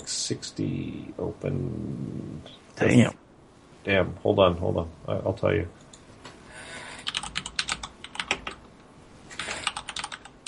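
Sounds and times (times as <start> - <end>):
speech: 0.3 - 3.2, 3.8 - 5.8
typing on a mechanical keyboard: 7.0 - 8.6, 9.4 - 10.4.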